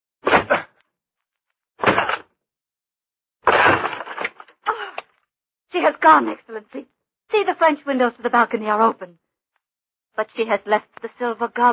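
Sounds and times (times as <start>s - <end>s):
wooden door splintering crash as it gives way: 1.8s - 2.2s, 3.5s - 4.4s
speech: 5.8s - 9.2s, 10.2s - 11.7s.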